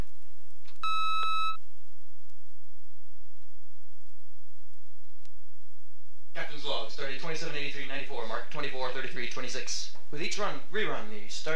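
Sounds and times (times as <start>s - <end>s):
electronic beep: 0.8s - 1.6s
speech: 6.8s - 11.5s.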